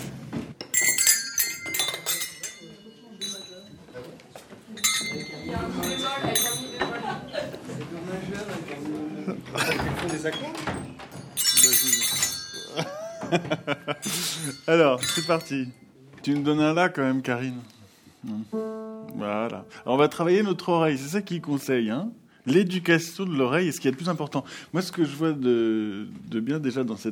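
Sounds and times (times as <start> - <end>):
small bells ringing and jingling: 0.6 - 7.5, 11.1 - 15.9
laughter: 9.0 - 10.2, 12.7 - 14.4
speech: 13.3 - 27.1.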